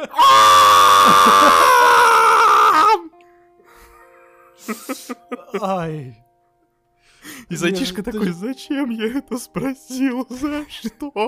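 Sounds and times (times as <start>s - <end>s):
speech: 0.0s - 0.5s, 4.9s - 6.2s, 7.5s - 11.2s
voice imitating an audience of children screaming in a theatre auditorium: 0.0s - 3.1s.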